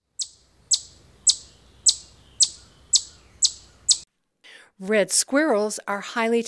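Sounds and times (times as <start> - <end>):
chipmunk chipping in the woods: 0.1 - 4.0
speech: 4.8 - 6.4.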